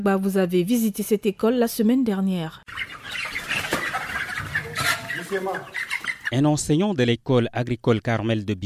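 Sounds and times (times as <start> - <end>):
speech: 0.0 - 3.0, 5.3 - 8.6
broiler chickens clucking: 2.7 - 6.4.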